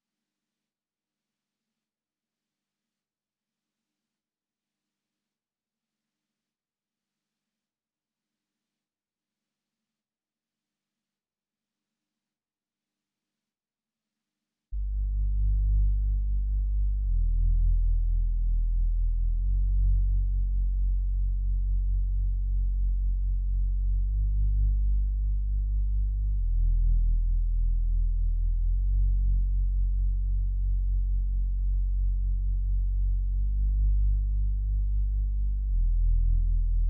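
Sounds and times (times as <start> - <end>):
bass melody loop in D major at 103 BPM: 14.8 - 36.8.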